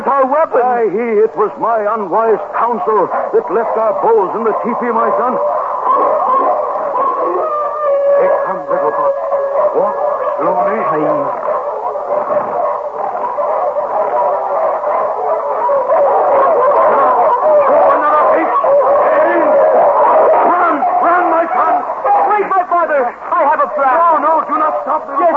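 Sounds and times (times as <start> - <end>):
pack of wolves howling: 0.0 - 25.3
speech: 0.1 - 6.1.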